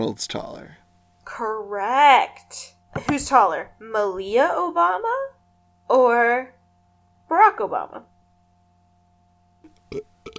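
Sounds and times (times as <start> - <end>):
speech: 0.0 - 5.3, 5.9 - 6.6, 7.3 - 8.1, 9.9 - 10.1
person burping: 9.7 - 10.3.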